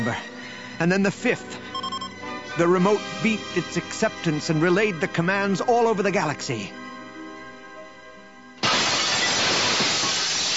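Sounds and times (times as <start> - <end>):
speech: 0.0 - 1.6, 2.6 - 6.8
glass window shattering: 8.6 - 10.5.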